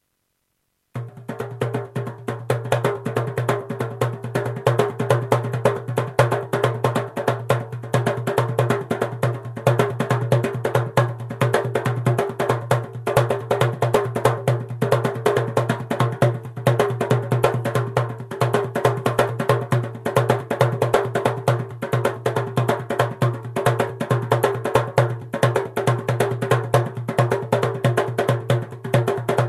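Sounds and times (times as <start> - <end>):
darbuka drum: 1.0 - 29.4.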